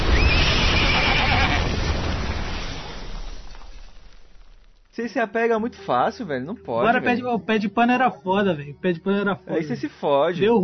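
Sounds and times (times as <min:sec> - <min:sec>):
horse giving a drawn-out quavering whinny: 0:00.2 - 0:01.7
speech: 0:05.0 - 0:10.6.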